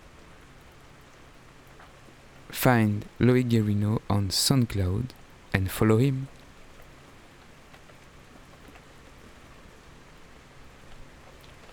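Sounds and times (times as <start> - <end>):
acid rain falling as sustained water drops: 0.0 - 2.6, 6.1 - 11.7
speech: 2.5 - 6.4.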